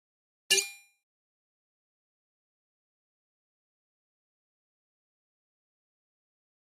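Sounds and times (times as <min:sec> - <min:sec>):
high-frequency metallic flash beep: 0:00.5 - 0:00.9.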